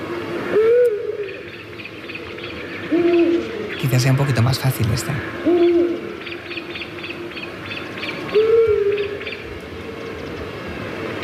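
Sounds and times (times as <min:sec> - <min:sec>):
scops owl calling with soft low whistled notes: 0:00.4 - 0:09.6
speech: 0:03.8 - 0:05.7.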